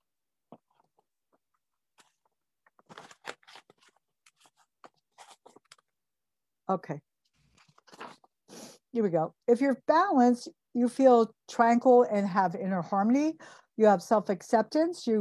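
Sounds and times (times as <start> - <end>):
paper sheets rustling and crinkling while shuffled and flipped: 0.5 - 6.0, 7.3 - 8.3
speech: 6.7 - 7.1, 8.9 - 15.1.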